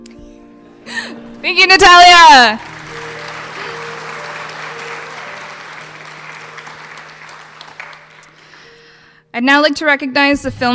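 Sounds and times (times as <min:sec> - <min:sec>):
speech: 0:01.4 - 0:02.7, 0:09.4 - 0:10.7
crowd at a film awards ceremony applauding: 0:01.7 - 0:08.8.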